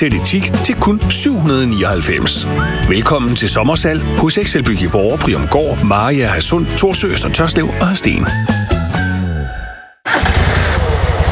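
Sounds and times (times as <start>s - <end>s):
speech: 0.0s - 8.8s
lawn mower engine sputtering and failing to start: 10.1s - 11.3s.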